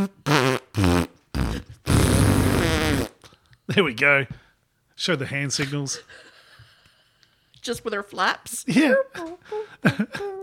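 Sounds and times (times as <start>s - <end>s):
speech: 0.0s - 0.2s, 3.7s - 4.4s, 5.0s - 6.3s, 7.6s - 10.4s
fart noises blown with the mouth: 0.0s - 3.4s.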